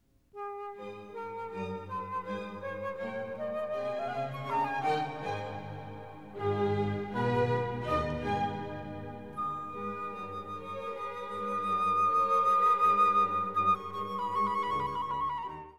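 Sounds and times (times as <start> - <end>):
flute introduction: 0.4 - 15.7.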